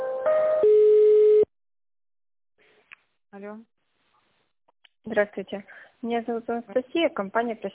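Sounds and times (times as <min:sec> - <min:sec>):
telephone tones during call transfer: 0:00.3 - 0:01.5
speech: 0:05.1 - 0:07.7.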